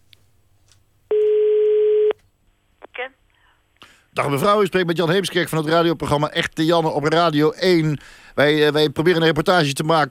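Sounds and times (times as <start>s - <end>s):
telephone tone as a call is placed: 1.1s - 2.2s
speech: 4.2s - 10.0s.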